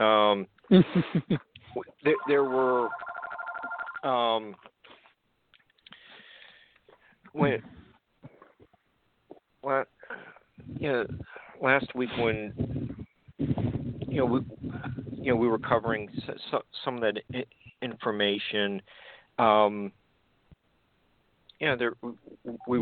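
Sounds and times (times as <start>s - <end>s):
speech: 0.0s - 3.1s, 4.0s - 4.7s, 7.3s - 7.8s, 9.6s - 10.0s, 10.7s - 20.0s, 21.6s - 22.8s
telephone ringing: 2.1s - 4.1s.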